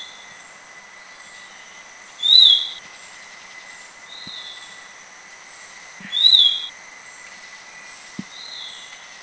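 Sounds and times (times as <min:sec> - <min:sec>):
constant high-pitched insect hum: 0:00.0 - 0:09.2
Black-capped babbler whistled notes in southern Thailand: 0:02.2 - 0:02.8, 0:06.0 - 0:06.7.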